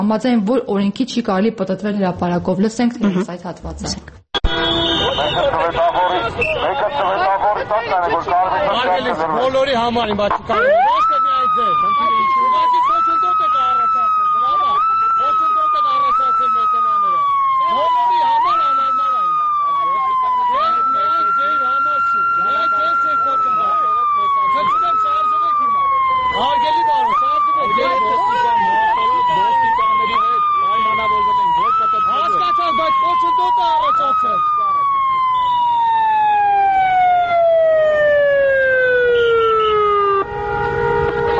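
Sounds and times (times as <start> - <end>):
speech: 0.0 - 4.2, 5.2 - 12.8
busy noise: 0.0 - 40.2
vehicle sirens switched on in a traffic jam in front of a government building: 4.4 - 41.3
loud siren cycling in pitch: 10.4 - 41.3.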